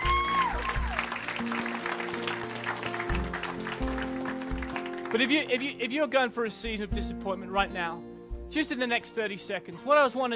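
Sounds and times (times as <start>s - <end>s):
large crowd applauding: 0.0s - 5.8s
sustained keyboard chords: 0.0s - 9.1s
speech: 5.1s - 10.3s.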